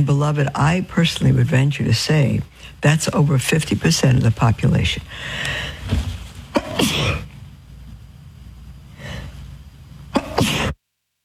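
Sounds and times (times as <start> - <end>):
speech: 0.0 - 6.1
person sneezing: 6.5 - 7.3, 10.2 - 10.8.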